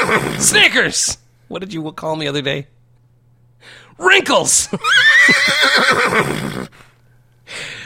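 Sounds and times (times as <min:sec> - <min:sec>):
horse snorting: 0:00.0 - 0:00.5, 0:05.5 - 0:06.7
horse whinnying: 0:00.0 - 0:00.6, 0:04.8 - 0:06.7
speech: 0:00.1 - 0:02.8, 0:03.6 - 0:06.9.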